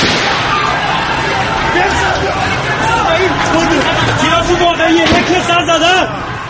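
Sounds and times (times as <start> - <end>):
sharp gunshot crack: 0.0 - 0.7, 5.0 - 5.5
chaotic crowd yelling and screaming: 0.0 - 6.4.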